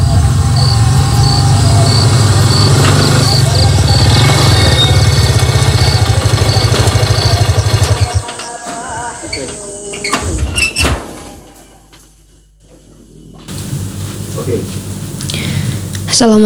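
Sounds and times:
low engine-like rumble: 0.0s - 8.3s, 13.5s - 16.4s
door opening with a creak and a clunk: 0.0s - 12.2s
indistinct voice-like sounds: 0.0s - 12.2s, 13.1s - 16.4s
speech: 16.2s - 16.4s.

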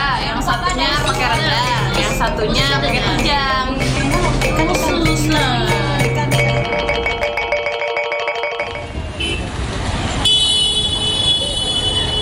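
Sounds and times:
constant rumble of car engines and road noise in dense traffic: 0.0s - 12.2s
speech: 2.2s - 5.7s
car horns honking in a traffic jam: 6.5s - 9.6s, 10.2s - 12.2s.

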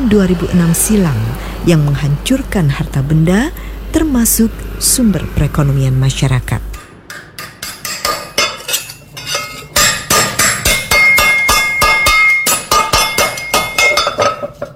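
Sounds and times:
speech: 0.1s - 6.7s
metal clanging against metal at a village house in Sewon, Bantul, Yogyakarta: 6.8s - 14.7s.

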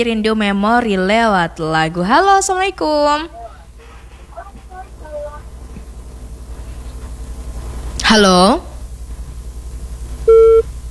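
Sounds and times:
speech: 0.0s - 3.4s, 8.1s - 8.7s
laughter: 0.0s - 8.6s
disconnected phone line beep: 10.2s - 10.8s.

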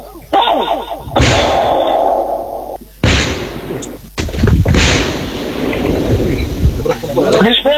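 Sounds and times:
controlled detonation of old WWII explosive ordnance: 1.0s - 6.9s
debris noise: 1.0s - 7.2s.

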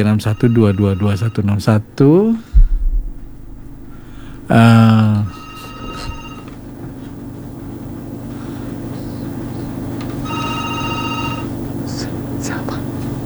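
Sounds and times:
speech: 0.0s - 2.6s, 4.5s - 5.0s
low hum: 0.0s - 6.6s
telephone ringing on a call-in line: 0.0s - 7.3s, 9.7s - 12.0s.

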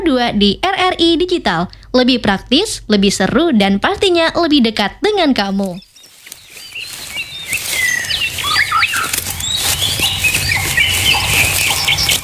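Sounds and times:
speech: 0.1s - 5.9s
birds chirping and tweeting: 3.0s - 12.2s
dense flock of birds flapping wings: 5.6s - 12.2s.

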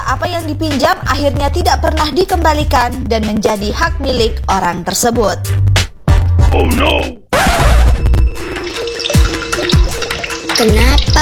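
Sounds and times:
speech: 0.1s - 5.8s, 6.5s - 7.2s, 10.6s - 11.1s
water running from an open tap: 8.2s - 11.1s.

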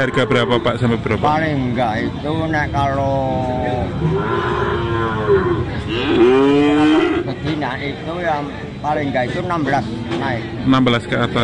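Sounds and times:
busy noisy background at a cattle market: 0.0s - 11.4s
speech: 0.0s - 11.4s
cattle mooing at a cattle market: 3.9s - 7.3s.

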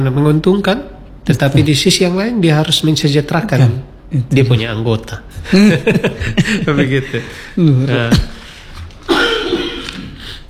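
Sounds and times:
speech: 0.0s - 8.3s
laughter: 5.4s - 8.6s
person coughing: 9.0s - 10.4s.

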